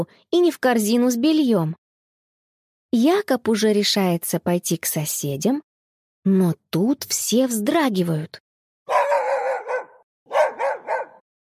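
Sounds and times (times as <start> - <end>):
speech: 0.0 - 1.8, 2.9 - 8.4
dog barking beside a field: 8.9 - 11.2.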